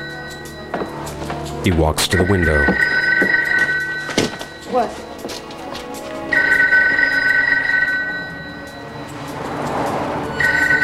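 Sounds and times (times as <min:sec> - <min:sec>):
speech: 0:01.6 - 0:03.3, 0:04.7 - 0:05.0
telephone ringing with an electronic trill: 0:01.6 - 0:05.3, 0:06.3 - 0:10.8.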